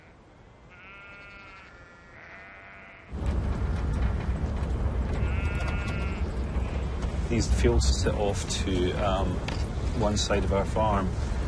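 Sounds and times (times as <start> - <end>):
sheep bleating in intensively grazed farm fields: 0.7 - 3.1, 5.2 - 6.8
steady rushing noise: 3.1 - 11.4
speech: 7.3 - 11.3.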